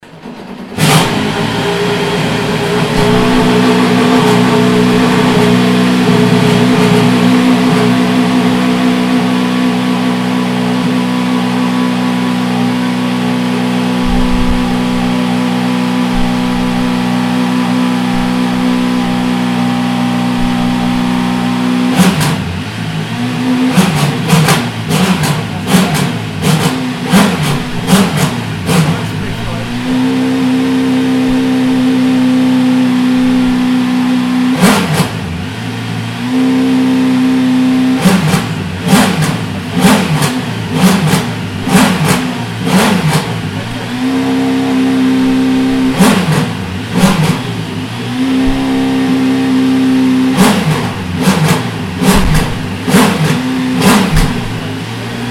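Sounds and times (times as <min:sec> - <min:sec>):
Porsche 919 race car engine: 0:00.0 - 0:55.2.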